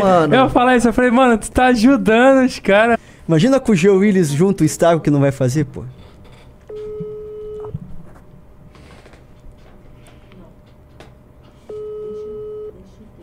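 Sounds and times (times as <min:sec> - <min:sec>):
speech: 0:00.0 - 0:06.0
outgoing telephone call ringing tones: 0:06.7 - 0:07.8, 0:11.7 - 0:12.8.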